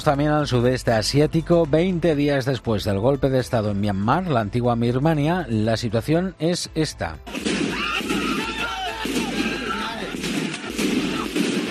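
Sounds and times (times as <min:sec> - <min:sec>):
speech: 0:00.0 - 0:07.7
gunshots of live fire at protests against the military coup in Myanmar: 0:07.3 - 0:11.6
loud chaotic crowd shouting at protests against the military coup in Myanmar: 0:07.4 - 0:11.6.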